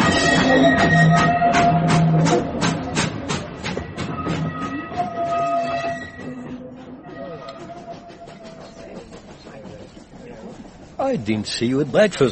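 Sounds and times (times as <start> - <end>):
sustained whistle-like tone: 0.0 - 2.4, 4.0 - 8.8
rolling rail noise: 0.0 - 12.3
steam train chuffing as it pulls away from station: 0.0 - 12.3
speech: 11.1 - 12.3.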